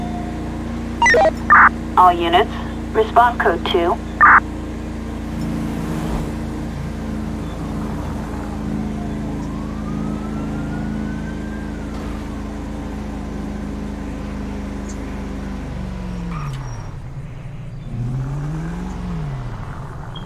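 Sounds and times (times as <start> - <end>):
fire truck siren: 0.0 - 4.4, 7.2 - 14.8
heavy steady engine rumble: 0.0 - 20.2
short sharp electronic beep: 1.0 - 1.7, 4.2 - 4.4
speech: 1.2 - 4.5.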